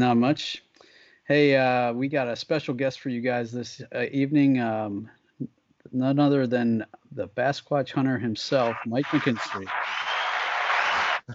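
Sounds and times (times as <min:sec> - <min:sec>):
speech: 0:00.0 - 0:00.6, 0:01.3 - 0:10.1
applause: 0:09.2 - 0:11.3.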